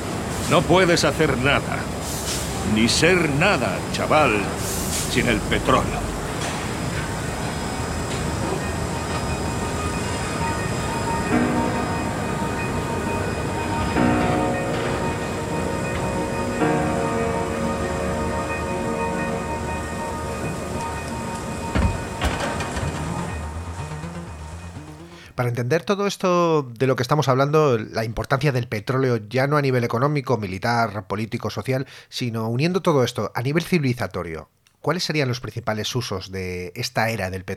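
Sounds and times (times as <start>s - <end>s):
diesel train rolling on rails: 0.0s - 25.3s
speech: 0.5s - 1.9s, 2.6s - 6.1s, 25.4s - 37.5s.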